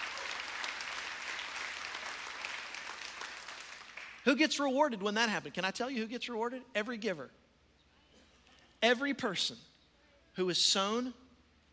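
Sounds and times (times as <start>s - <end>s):
large audience clapping in a church: 0.0s - 4.2s
speech: 4.2s - 7.4s, 8.8s - 9.7s, 10.4s - 11.2s.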